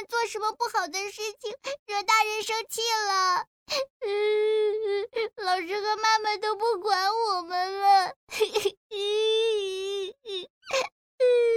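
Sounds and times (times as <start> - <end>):
speech: 0.2 - 9.7
child crying and sobbing: 4.0 - 5.5, 7.2 - 11.5.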